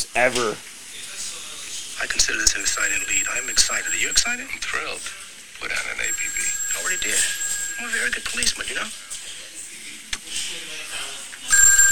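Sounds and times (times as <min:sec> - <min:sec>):
low noise: 0:00.0 - 0:11.9
speech: 0:00.2 - 0:00.7, 0:02.0 - 0:09.0
telephone ringing with a sharp electronic trill: 0:02.2 - 0:04.8, 0:05.6 - 0:08.9, 0:11.5 - 0:11.9.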